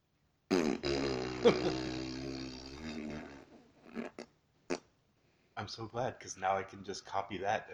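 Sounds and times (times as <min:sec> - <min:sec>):
buzzing raspberry made with the mouth to imitate a fart: 0:00.5 - 0:04.9
speech: 0:01.4 - 0:02.0, 0:05.6 - 0:07.7
breaths: 0:05.2 - 0:05.6.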